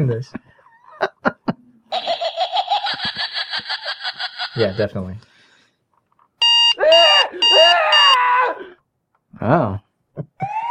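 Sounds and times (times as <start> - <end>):
speech: 0.0 - 1.1, 4.6 - 5.3, 9.4 - 10.3
laughter: 0.8 - 4.9
smart-speaker alarm beeping: 6.4 - 8.2.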